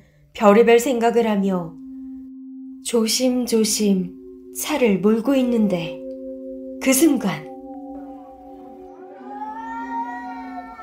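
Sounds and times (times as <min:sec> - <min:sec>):
speech: 0:00.4 - 0:01.8, 0:02.8 - 0:06.0, 0:06.8 - 0:07.5
angry cat yowling: 0:08.9 - 0:10.8.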